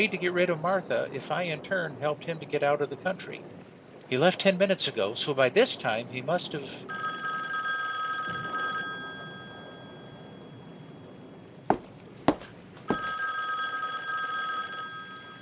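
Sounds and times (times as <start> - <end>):
speech: 0.0 - 7.2
telephone ringing with trilling bell tones: 6.9 - 15.4.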